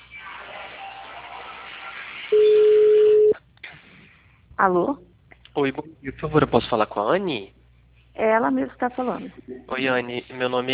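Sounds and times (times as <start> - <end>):
faint hissing static on a telephone line: 2.3 - 3.4
steady electronic telephone tone as a number is dialed: 2.3 - 3.4
speech: 4.6 - 7.6, 8.2 - 10.7.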